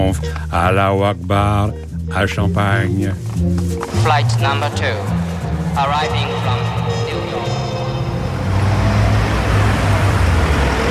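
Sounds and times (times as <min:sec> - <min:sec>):
speech: 0:00.0 - 0:05.2, 0:05.8 - 0:06.9
car engines and road noise of arriving Rolls-Royce and Mercedes sedan: 0:03.0 - 0:10.8.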